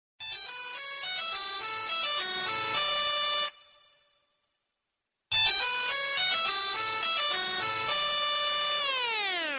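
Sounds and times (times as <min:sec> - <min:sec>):
mono Nokia mobile phone sound: 0:00.2 - 0:04.1, 0:05.3 - 0:09.5.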